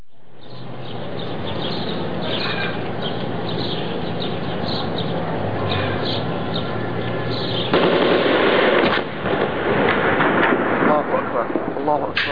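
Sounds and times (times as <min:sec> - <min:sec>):
voices: 0:00.5 - 0:09.4, 0:10.6 - 0:12.3
strong blasts: 0:07.2 - 0:12.3
rapid gunfire-like bursts: 0:07.7 - 0:11.7
heavy bombardment of a cemetery: 0:07.7 - 0:12.3.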